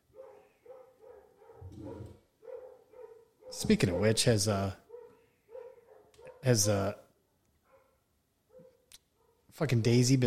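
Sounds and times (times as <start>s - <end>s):
dog barking: 0.0s - 7.0s, 7.6s - 9.5s
speech: 3.5s - 4.8s, 6.4s - 7.0s, 9.6s - 10.2s.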